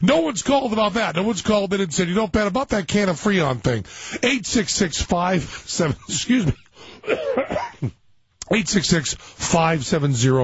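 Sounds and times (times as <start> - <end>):
speech: 0.0 - 10.4
man with a cough coughing: 5.8 - 8.1.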